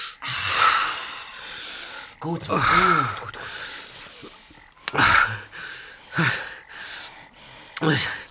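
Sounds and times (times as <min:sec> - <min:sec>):
man gasping for breath after near suffocation: 0:00.4 - 0:08.3
speech: 0:02.2 - 0:03.4, 0:07.9 - 0:08.2.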